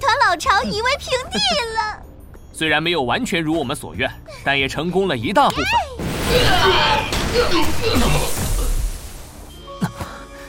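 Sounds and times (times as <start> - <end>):
speech: 0.4 - 2.0, 2.6 - 8.4
people shouting: 5.6 - 8.4
sharp bangs: 6.0 - 9.4
loud roaring explosion: 6.0 - 9.5.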